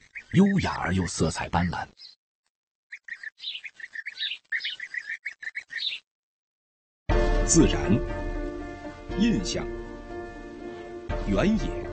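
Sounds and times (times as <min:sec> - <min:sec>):
bird chicks calling with high cheeps and chirps: 0:00.0 - 0:01.2, 0:01.9 - 0:02.2, 0:02.9 - 0:06.1
speech: 0:00.3 - 0:02.2, 0:07.5 - 0:08.2, 0:09.1 - 0:09.8, 0:11.2 - 0:11.9.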